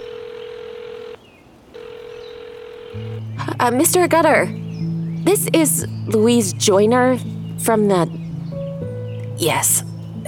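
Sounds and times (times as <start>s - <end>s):
mobile phone electronic ringing tone after dialing: 0.0s - 3.7s
speech: 3.0s - 4.6s, 5.2s - 8.2s, 9.4s - 10.2s.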